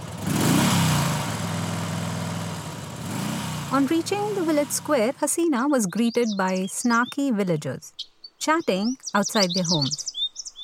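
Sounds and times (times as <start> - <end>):
scooter engine revving in Telangana southern India: 0.0 - 5.4
speech: 3.7 - 10.1.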